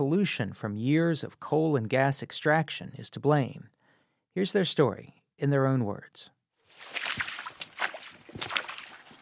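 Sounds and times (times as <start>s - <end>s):
speech: 0.0s - 3.8s, 4.4s - 7.2s
water sloshing and splashing out of a mine: 6.7s - 9.2s.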